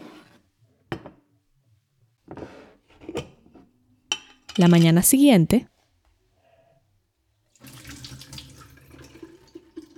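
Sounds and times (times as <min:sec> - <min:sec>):
speech: 0:04.6 - 0:05.8
kitchen tap running: 0:07.6 - 0:09.9.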